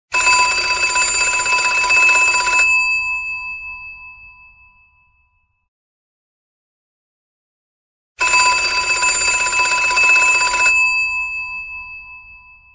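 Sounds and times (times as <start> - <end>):
old rotary phone ringtone: 0.1 - 3.0, 8.2 - 11.8.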